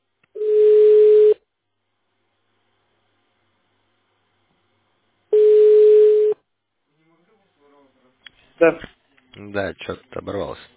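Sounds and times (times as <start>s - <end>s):
telephone busy signal tones: 0.4s - 1.4s, 5.3s - 6.4s
speech: 8.6s - 10.7s.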